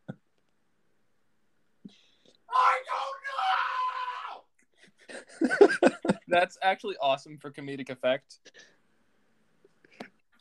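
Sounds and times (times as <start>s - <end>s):
faint scream from another room: 2.5s - 4.5s
speech: 6.3s - 8.5s.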